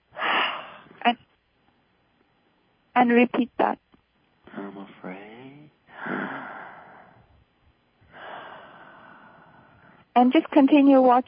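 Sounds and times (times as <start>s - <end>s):
speech: 1.0s - 1.3s, 3.0s - 3.8s, 10.2s - 11.2s
deep exhale during breathing exercise: 5.9s - 7.3s, 8.1s - 10.0s.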